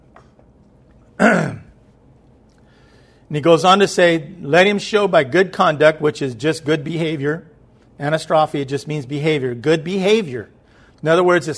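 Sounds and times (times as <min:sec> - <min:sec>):
short rough throat-clearing cough: 0:01.2 - 0:01.8
speech: 0:03.3 - 0:11.5.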